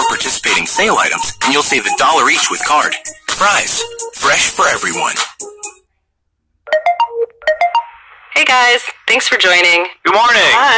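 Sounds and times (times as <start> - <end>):
speech: 0.8 - 5.8, 8.4 - 10.7
phone notification chirps announcing food delivery arrival: 6.7 - 8.0.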